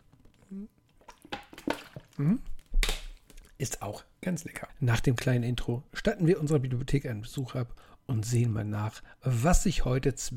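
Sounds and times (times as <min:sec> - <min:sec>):
breathy mouth noises: 0:00.0 - 0:01.2
sipping and gulping water from a glass: 0:00.0 - 0:02.7
speech: 0:00.5 - 0:00.8, 0:02.2 - 0:02.5, 0:03.6 - 0:10.3.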